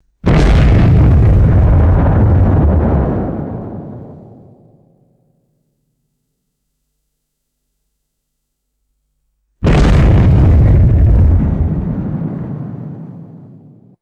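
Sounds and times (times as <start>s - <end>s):
deep explosive sonic booms: 0.2s - 5.1s, 9.6s - 14.0s.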